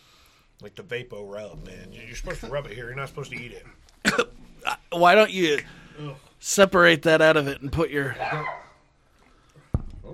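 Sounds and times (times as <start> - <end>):
faint lingering noise: 0.0 - 10.1
speech: 0.6 - 8.6
single sharp dog bark: 8.2 - 8.8.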